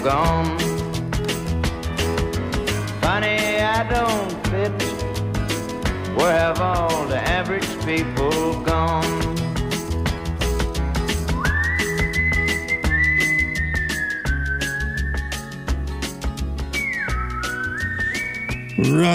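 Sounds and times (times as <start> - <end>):
speech: 0.0 - 0.6, 6.2 - 9.4, 18.8 - 19.1
upbeat band with drums and bass: 0.0 - 19.1
man whistling a bright sliding melody: 11.3 - 19.1.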